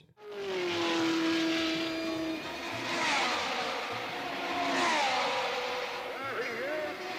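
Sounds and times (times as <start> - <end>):
Lotus 38 rear-engined racing car roaring past at speed: 0.2 - 7.1
track and crowd noise: 0.3 - 7.1.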